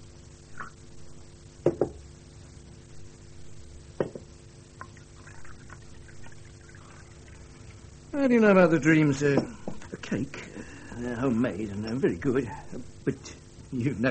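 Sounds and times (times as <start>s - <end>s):
low steady hum: 0.0s - 14.0s
tea pouring into a cup: 4.8s - 8.0s
speech: 8.2s - 10.4s, 11.0s - 14.0s.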